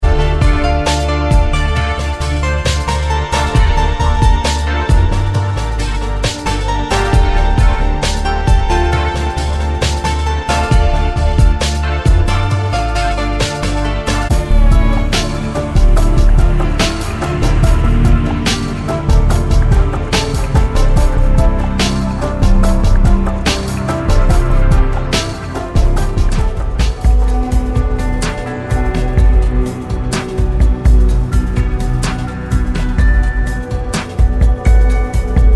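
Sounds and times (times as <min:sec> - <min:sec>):
dark downtempo music: 0:00.0 - 0:35.5.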